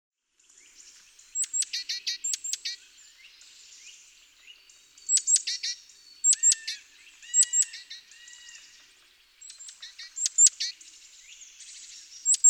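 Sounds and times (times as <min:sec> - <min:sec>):
great tit Parus major calling: 0:01.3 - 0:02.8, 0:05.0 - 0:08.5, 0:09.4 - 0:10.8, 0:11.8 - 0:12.4.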